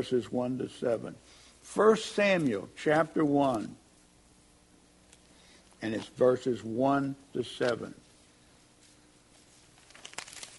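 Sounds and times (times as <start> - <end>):
speech: 0.0 - 3.8, 5.8 - 8.0
Bible pages being turned: 5.9 - 6.2, 8.8 - 10.5.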